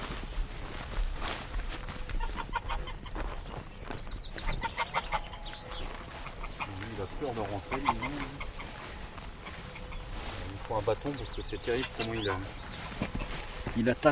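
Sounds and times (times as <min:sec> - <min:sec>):
rustling farmyard noise: 0:00.0 - 0:14.1
shuffling footsteps: 0:00.0 - 0:14.1
gander honking: 0:04.6 - 0:10.1, 0:11.5 - 0:13.5
speech: 0:07.3 - 0:08.5, 0:10.7 - 0:13.2, 0:13.8 - 0:14.1.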